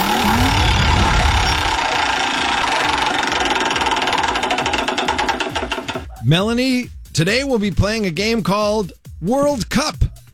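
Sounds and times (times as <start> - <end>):
spinning prize wheel ratcheting clicks: 0.0 - 6.3
speech: 6.3 - 10.0.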